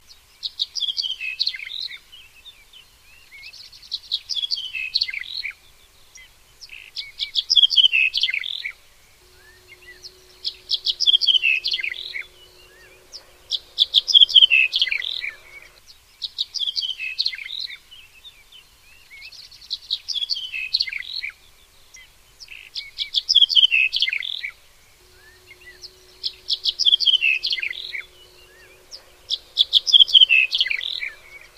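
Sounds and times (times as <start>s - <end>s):
Emberiza pallasi bunting singing: 4.2s - 15.9s, 20.1s - 31.5s.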